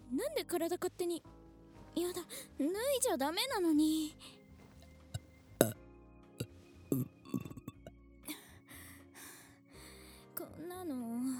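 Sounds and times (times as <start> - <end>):
speech: 0.3 - 1.4, 2.0 - 4.4, 10.7 - 11.3
short throaty burps: 6.9 - 7.9.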